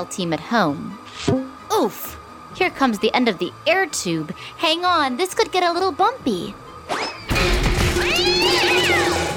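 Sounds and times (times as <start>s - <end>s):
speech: 0.0s - 6.6s
cat yowling meow: 8.0s - 9.2s.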